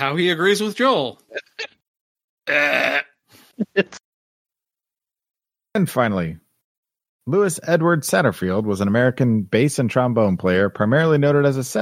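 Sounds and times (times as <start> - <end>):
speech: 0.0 - 1.7, 2.5 - 4.0, 5.8 - 6.4, 7.3 - 11.8
loud throaty belch: 2.5 - 3.2.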